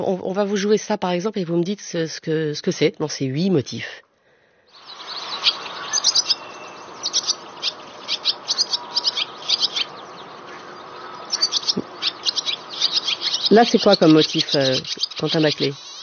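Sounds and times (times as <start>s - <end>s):
speech: 0.0s - 4.1s, 13.5s - 15.8s
steady hiss: 0.0s - 16.0s
barn swallow singing with scratchy twittering notes: 4.7s - 16.0s.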